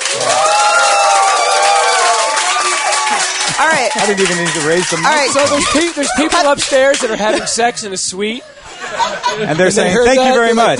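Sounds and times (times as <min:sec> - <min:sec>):
crowd excited shouts and whoops: 0:00.0 - 0:06.6
crowd applause with dense clapping: 0:00.0 - 0:07.7
laughter: 0:03.0 - 0:10.7
speech: 0:03.8 - 0:10.7.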